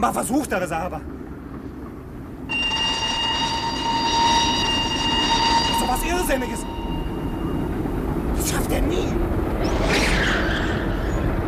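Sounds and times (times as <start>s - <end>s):
speech: 0.0s - 1.2s, 5.9s - 6.7s, 8.4s - 10.1s
train approaching an unguarded railway crossing with a rumbling roar: 1.0s - 11.4s
sustained high tones: 2.5s - 9.3s.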